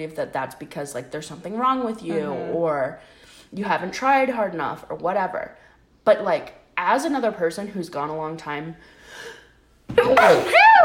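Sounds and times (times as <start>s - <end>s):
speech: 0.0s - 10.8s
loud sneeze: 10.0s - 10.8s.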